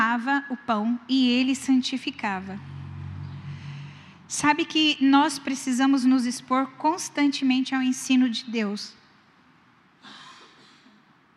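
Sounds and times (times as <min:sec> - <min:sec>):
speech: 0:00.2 - 0:02.8, 0:04.3 - 0:09.0
person coughing: 0:10.0 - 0:11.1.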